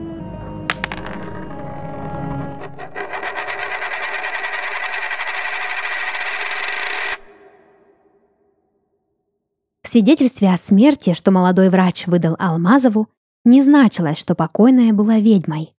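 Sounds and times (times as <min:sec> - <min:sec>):
chervonets coins dropping with a sharp metallic ring: 0:00.7 - 0:07.3
speech: 0:09.9 - 0:15.7.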